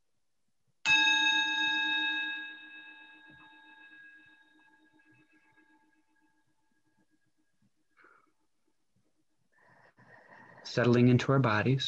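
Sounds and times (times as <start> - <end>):
small meditation bell ringing: 0.8 - 7.2
speech: 10.7 - 11.8.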